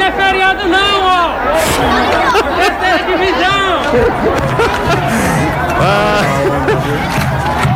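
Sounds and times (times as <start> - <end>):
football fans crowd hubbub in stadium stands at a third-division match: 0.0 - 7.7
laughter: 0.3 - 7.7.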